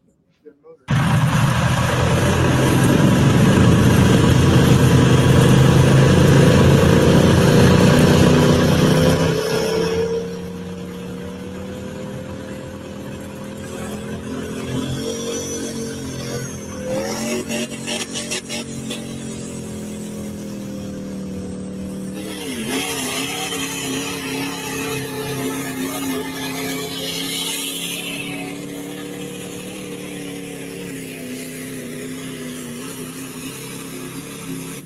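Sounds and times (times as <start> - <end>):
diesel truck engine revving: 0.9 - 34.8.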